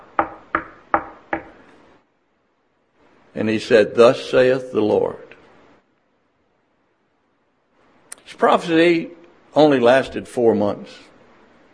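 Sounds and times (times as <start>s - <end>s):
knocking on a door: 0.0s - 1.6s
speech: 3.4s - 5.2s, 8.4s - 11.1s.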